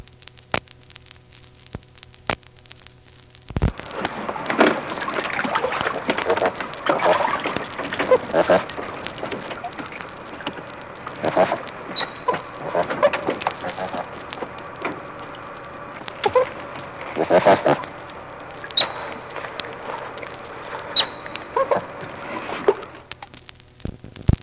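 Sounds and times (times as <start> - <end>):
faint steady hum: 0.0 - 24.4
otters grunting, chirping and squealing: 3.8 - 23.1.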